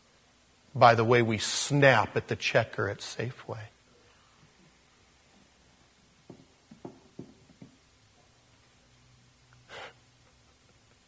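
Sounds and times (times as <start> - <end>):
speech: 0.8 - 3.8
soft short breathy sounds: 9.6 - 10.3
person gasping sharply: 9.7 - 10.0.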